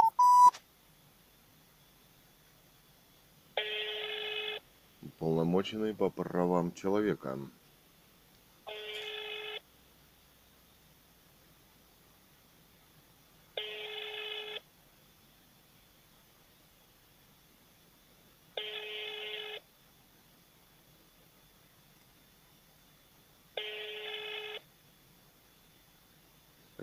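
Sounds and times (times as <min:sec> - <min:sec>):
telephone ringing tone: 0:00.0 - 0:00.5, 0:03.6 - 0:04.6, 0:08.7 - 0:09.6, 0:13.6 - 0:14.6, 0:18.6 - 0:19.6, 0:23.6 - 0:24.6
speech: 0:05.1 - 0:07.6.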